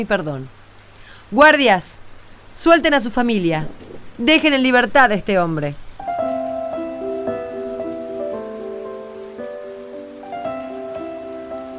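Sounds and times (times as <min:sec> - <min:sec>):
speech: 0:00.0 - 0:00.6, 0:01.3 - 0:02.0, 0:02.6 - 0:05.8
rain on roofs: 0:00.0 - 0:11.7
soft sustained melodic notes: 0:06.0 - 0:11.7.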